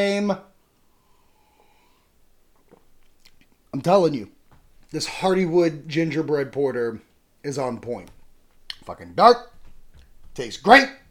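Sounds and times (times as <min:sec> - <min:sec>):
speech: 0:00.0 - 0:00.5, 0:03.7 - 0:08.2, 0:08.8 - 0:09.5, 0:10.4 - 0:11.0
person sipping a drink: 0:01.0 - 0:03.6.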